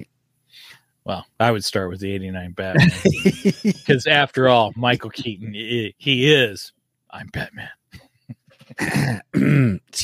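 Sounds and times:
speech: 0:00.5 - 0:08.0, 0:08.7 - 0:10.0
person clearing throat: 0:02.8 - 0:03.2, 0:08.6 - 0:10.0
laughter: 0:02.8 - 0:05.3
throaty grunts: 0:08.7 - 0:09.9.

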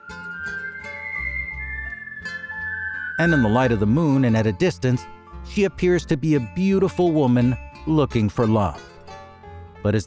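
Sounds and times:
sustained high whistled tone: 0:00.0 - 0:04.2
speech: 0:03.2 - 0:08.9, 0:09.8 - 0:10.0.

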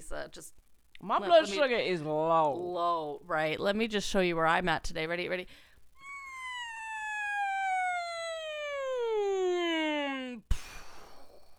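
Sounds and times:
speech: 0:00.1 - 0:05.7
voice imitating a descending siren: 0:06.0 - 0:10.5.

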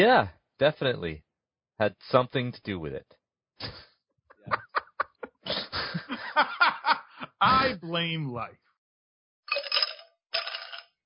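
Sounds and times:
speech: 0:00.0 - 0:01.2, 0:01.8 - 0:03.9, 0:07.4 - 0:08.6
laughter: 0:03.6 - 0:08.1
ice cubes tumbling into a glass: 0:09.5 - 0:10.9.

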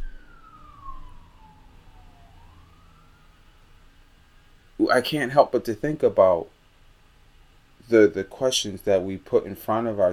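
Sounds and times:
emergency vehicle siren wailing past: 0:00.0 - 0:04.3
speech: 0:04.9 - 0:06.5, 0:07.9 - 0:10.1.

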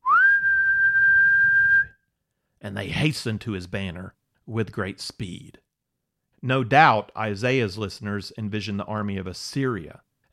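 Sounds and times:
loud whistle like a call to summon followers: 0:00.0 - 0:02.0
speech: 0:02.6 - 0:05.6, 0:06.4 - 0:10.3.

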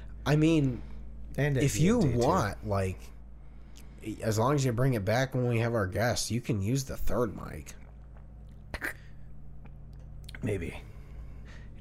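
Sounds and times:
faint hum: 0:00.0 - 0:11.8
speech: 0:00.2 - 0:03.2, 0:04.0 - 0:07.8, 0:10.4 - 0:10.9
person choking and sputtering after swallowing wrong: 0:08.7 - 0:09.1.

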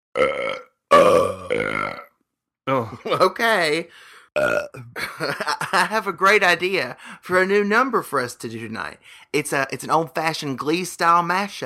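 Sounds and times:
person burping after eating fruitcake: 0:00.2 - 0:03.2, 0:04.4 - 0:05.1
speech: 0:01.5 - 0:01.8, 0:02.9 - 0:11.6.

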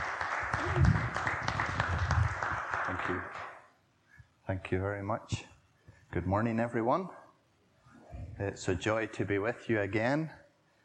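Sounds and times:
crowd applauding to welcome a speaker: 0:00.0 - 0:03.6
speech: 0:04.5 - 0:05.5, 0:06.1 - 0:07.2, 0:08.4 - 0:10.4.

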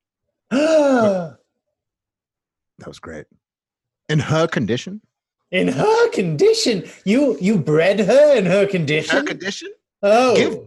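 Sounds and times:
loud dramatic voiced gasp: 0:00.5 - 0:01.4
speech: 0:02.8 - 0:03.5, 0:04.1 - 0:10.6.

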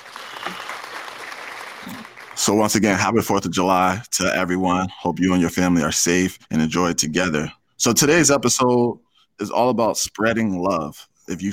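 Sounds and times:
crowd applause: 0:00.0 - 0:02.8
speech: 0:02.4 - 0:11.5.

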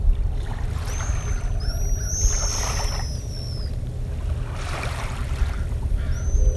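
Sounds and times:
low rumble of water: 0:00.0 - 0:06.5
nesting colony of pigeon guillemots on Anderson Island chirping: 0:00.9 - 0:03.8, 0:05.9 - 0:06.5.

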